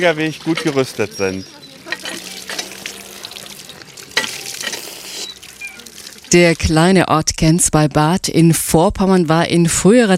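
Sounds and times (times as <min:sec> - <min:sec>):
speech: 0:00.0 - 0:01.6, 0:06.3 - 0:10.1
bubbling running water of an old spring: 0:00.0 - 0:07.1.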